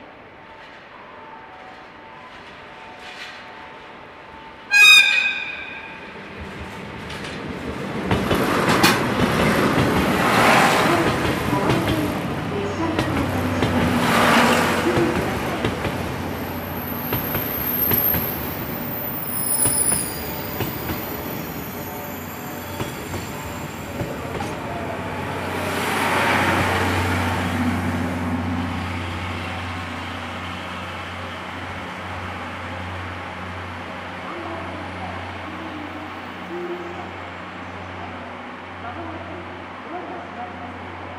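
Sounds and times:
express train wheels squealing and screeching as it slows: 4.7 - 6.3, 16.4 - 24.5
express train rolling into a station platform with a rumbling roar: 4.7 - 39.8.

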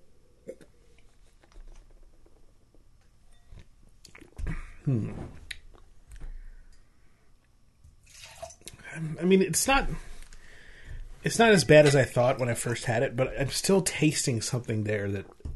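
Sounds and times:
speech: 4.8 - 5.4, 9.1 - 10.1, 11.2 - 15.4
beer pouring into a glass: 8.0 - 8.7.

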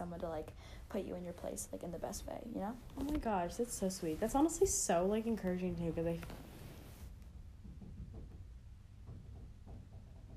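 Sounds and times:
speech: 0.0 - 6.5
someone banging on a door: 7.4 - 10.3.

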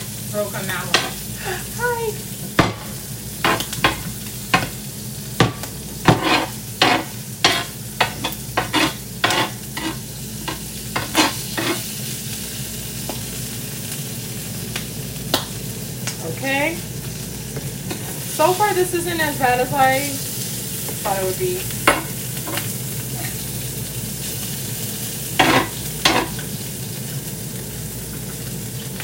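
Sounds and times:
eggs frying in a pan with egg rings: 0.0 - 29.0
speech: 0.3 - 2.4, 18.4 - 20.2, 21.0 - 21.8
sharp knocks and scrapes of egg rings in a pan: 6.1 - 10.0.

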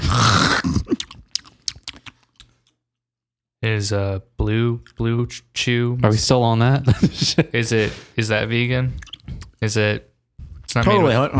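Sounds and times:
crisp crunching of a raw head of lettuce being eaten: 0.0 - 2.7
speech: 3.6 - 10.1, 10.7 - 11.3
laughter: 6.7 - 8.2, 10.8 - 11.3.

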